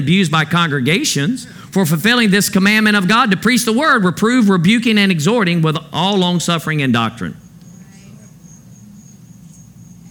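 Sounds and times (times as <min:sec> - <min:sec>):
speech: 0:00.0 - 0:07.4
cricket chirping: 0:07.4 - 0:10.1.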